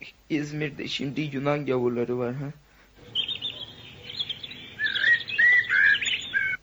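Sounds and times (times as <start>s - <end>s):
speech: 0.3s - 2.6s
small bird singing in a tree: 3.0s - 6.6s.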